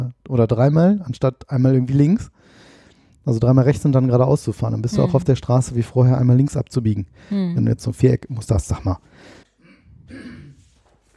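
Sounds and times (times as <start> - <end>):
speech: 0.3 - 9.4
low rasping throat clearing: 9.6 - 10.7.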